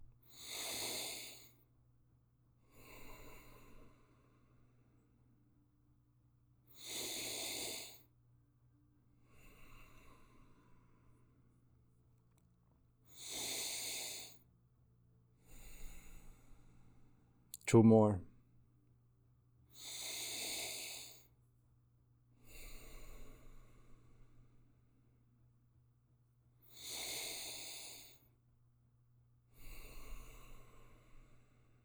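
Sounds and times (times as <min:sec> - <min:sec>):
slow deep breathing in and out through the nose: 0:00.3 - 0:01.5, 0:02.7 - 0:04.5, 0:06.8 - 0:08.1, 0:09.2 - 0:11.0, 0:13.1 - 0:14.4, 0:15.5 - 0:17.0, 0:19.8 - 0:21.3, 0:22.4 - 0:24.4, 0:26.7 - 0:28.2, 0:29.6 - 0:31.5
speech: 0:17.7 - 0:18.3.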